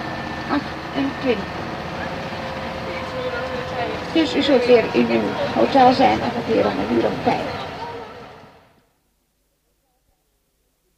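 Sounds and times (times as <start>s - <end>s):
engine rumble of a moving bus: 0.0s - 8.9s
road noise inside a moving bus: 0.0s - 9.0s
speech: 0.5s - 1.6s, 4.1s - 7.6s
faint voices inside a bus: 0.5s - 8.6s.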